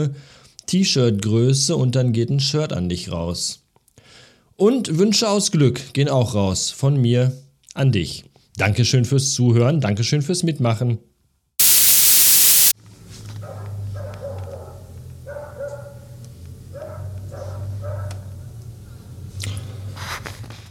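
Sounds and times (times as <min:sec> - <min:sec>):
speech: 0:00.0 - 0:03.6, 0:04.6 - 0:11.1
loud static: 0:11.6 - 0:12.7
dog barking: 0:13.4 - 0:16.1, 0:16.7 - 0:18.3.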